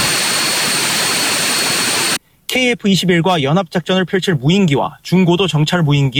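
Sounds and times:
Korean 1,400-horsepower military turboprop aircraft engine running at high power: 0:00.0 - 0:02.2
speech: 0:02.6 - 0:06.1.

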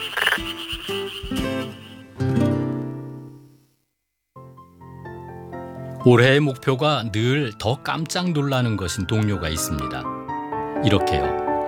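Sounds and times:
black-spotted pond frog croaking: 0:00.0 - 0:02.2
speech: 0:06.0 - 0:10.1, 0:10.8 - 0:11.6.

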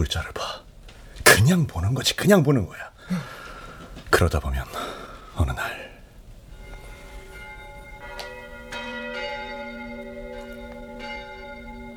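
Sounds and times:
speech: 0:00.0 - 0:00.6, 0:01.4 - 0:03.4, 0:04.1 - 0:04.8, 0:05.4 - 0:05.9
cathedral church bell ringing: 0:06.4 - 0:11.9.

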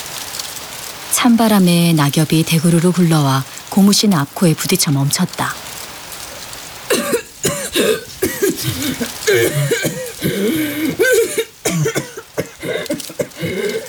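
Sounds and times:
speech: 0:01.2 - 0:05.6, 0:09.3 - 0:10.8
person coughing harshly behind a hand: 0:06.9 - 0:13.8
throat-clearing rattles: 0:06.9 - 0:13.8
person gasping: 0:07.7 - 0:11.6, 0:12.4 - 0:13.8.

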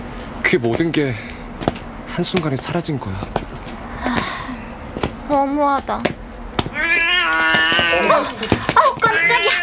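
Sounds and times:
speech: 0:00.5 - 0:01.3, 0:02.2 - 0:03.4, 0:05.5 - 0:06.2, 0:07.7 - 0:09.6
cat meowing as it passes by in a quiet deserted street: 0:06.7 - 0:09.6.

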